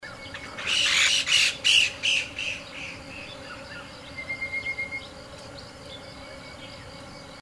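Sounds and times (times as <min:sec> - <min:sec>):
Chinese bamboo partridge calling harsh repeated notes: 0:00.6 - 0:03.0.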